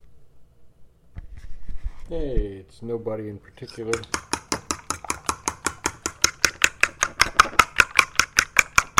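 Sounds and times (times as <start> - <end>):
speech: 2.1 - 4.2
whisk beating egg custard for French toast against a bowl: 3.7 - 8.9.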